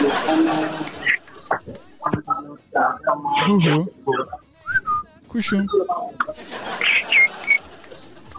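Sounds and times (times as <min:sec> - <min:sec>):
laughter: 0:00.0 - 0:03.0, 0:06.1 - 0:08.3
speech: 0:03.5 - 0:04.2, 0:05.3 - 0:05.8
person whistling a bird-like call: 0:04.6 - 0:05.1.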